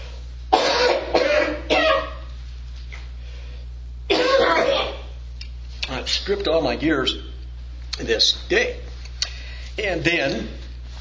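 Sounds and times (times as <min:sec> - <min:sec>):
person coughing harshly: 0:00.5 - 0:02.3, 0:04.1 - 0:05.2
speech: 0:06.3 - 0:07.3, 0:08.0 - 0:08.8, 0:09.8 - 0:10.6.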